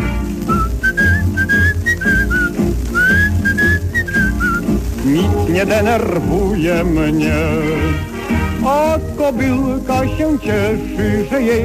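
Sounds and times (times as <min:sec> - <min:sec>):
song's rhythmic backing music: 0:00.0 - 0:11.6
whistled tune: 0:00.4 - 0:05.4
speech: 0:05.1 - 0:11.6.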